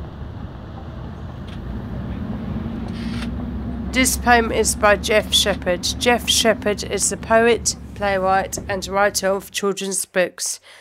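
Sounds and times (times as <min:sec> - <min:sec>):
large vehicle engine rumbling: 0:00.0 - 0:09.6
speech: 0:04.0 - 0:10.7.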